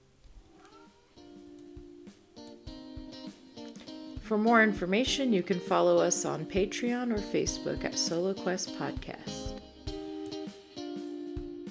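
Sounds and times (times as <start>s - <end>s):
cat meowing: 0.5s - 1.3s
speech: 4.3s - 9.4s.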